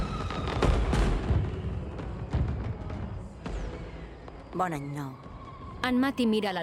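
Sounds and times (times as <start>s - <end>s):
New Year fireworks exploding: 0.0s - 3.7s
speech: 4.6s - 5.2s, 5.8s - 6.6s.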